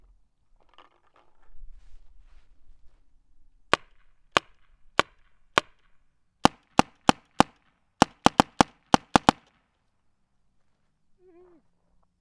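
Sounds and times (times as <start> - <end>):
Spyder long barrel gun firing: 3.7 - 9.6.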